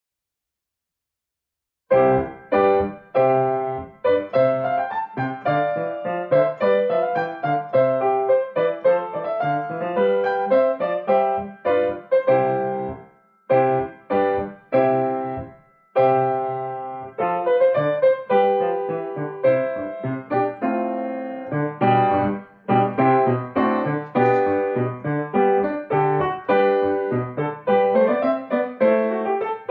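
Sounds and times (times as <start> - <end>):
piano piece: 1.9 - 29.6.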